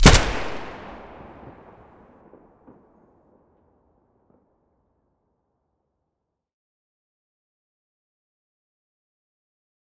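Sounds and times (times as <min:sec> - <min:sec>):
AN-94 Abakan rifle muzzle gunshots: 0:00.0 - 0:01.5.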